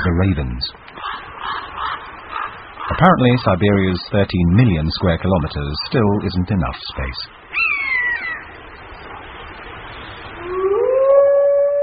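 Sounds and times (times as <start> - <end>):
speech: 0.2 - 0.9, 2.9 - 7.4
wolf pack howling in a chorus: 10.3 - 11.8.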